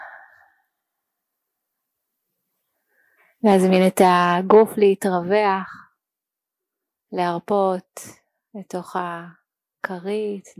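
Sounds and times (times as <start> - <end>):
soft breathy exhale of a deep breath: 0.0 - 0.7
speech: 3.4 - 5.8, 7.1 - 10.5.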